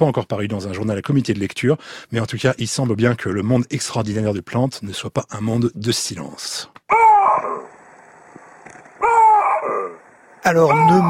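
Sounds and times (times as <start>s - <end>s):
speech: 0.0s - 7.7s, 10.4s - 11.0s
baboons giving harmonic two-vowel barking calls: 6.9s - 7.7s, 9.0s - 10.0s, 10.6s - 11.0s.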